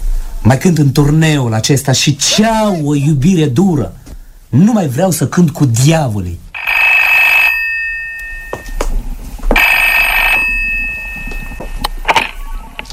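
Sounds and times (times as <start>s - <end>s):
speech: 0.4s - 6.4s
telephone ringing: 6.6s - 8.9s, 9.5s - 12.9s.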